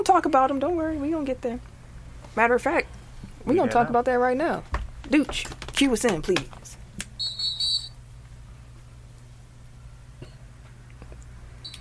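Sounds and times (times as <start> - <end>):
speech: 0.0 - 1.7, 2.4 - 6.8
shrill whistle toot: 7.2 - 8.0.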